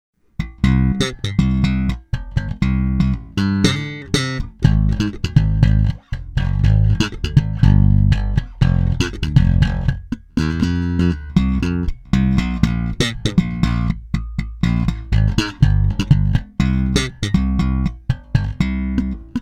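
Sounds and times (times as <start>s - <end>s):
electric bass with new strings and new battery: 0.4s - 19.4s.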